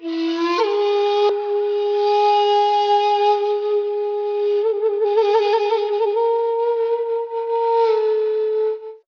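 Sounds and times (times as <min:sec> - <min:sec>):
native flute loops: 0:00.0 - 0:09.0.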